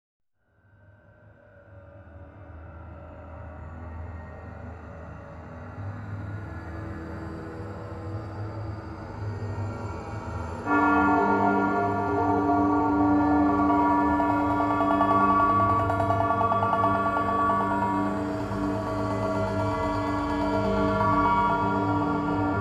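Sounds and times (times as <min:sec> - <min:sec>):
cymbal: 0:10.6 - 0:22.5.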